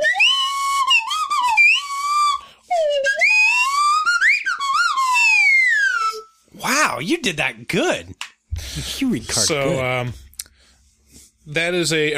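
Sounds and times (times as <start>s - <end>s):
slide whistle playing a short swooping intro theme: 0.0s - 6.5s
speech: 7.0s - 8.2s, 8.8s - 10.2s, 11.5s - 12.1s.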